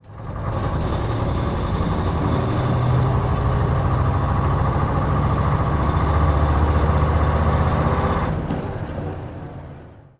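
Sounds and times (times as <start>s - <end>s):
Leyland Titan PD2 bus engine: 0.0s - 10.1s.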